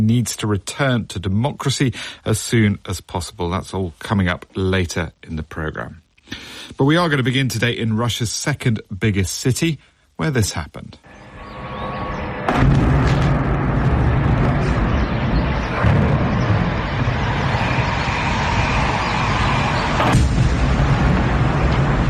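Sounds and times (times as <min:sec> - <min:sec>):
speech: 0:00.0 - 0:11.2
explosions from drones striking targets on the outskirts of a city: 0:11.8 - 0:22.0.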